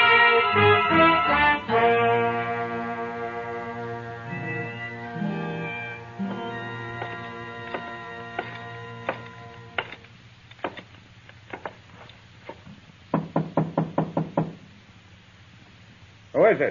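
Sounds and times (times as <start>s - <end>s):
sustained tone: 0.0s - 10.0s
knocking on a door: 13.1s - 14.6s.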